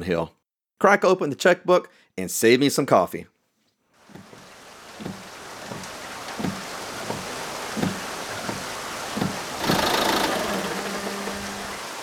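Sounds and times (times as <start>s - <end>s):
speech: 0.0s - 3.3s
old Ford car engine cranking, starting and idling: 9.1s - 11.9s.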